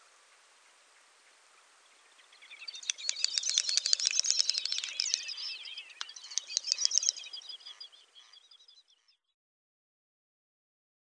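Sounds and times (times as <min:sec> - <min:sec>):
great snipe display song: 0:02.7 - 0:07.9.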